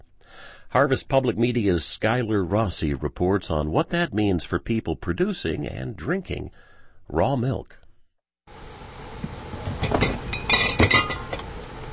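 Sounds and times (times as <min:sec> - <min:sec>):
speech: 0:00.7 - 0:07.8
glass jars clinking as they are pulled out: 0:09.8 - 0:11.4.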